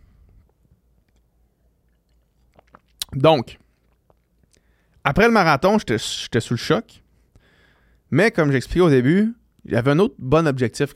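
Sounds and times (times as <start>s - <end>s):
quiet room hum: 0.0s - 10.9s
faint wet mouth sounds of sipping water: 1.8s - 4.6s
speech: 3.1s - 3.6s, 5.0s - 7.0s, 8.1s - 10.9s.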